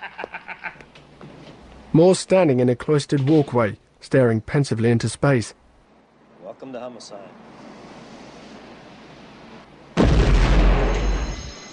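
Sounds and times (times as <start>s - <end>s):
speech: 2.0s - 5.6s, 6.6s - 7.6s
explosion boom: 10.0s - 11.6s
glass doors shattering from an explosion: 10.0s - 11.7s.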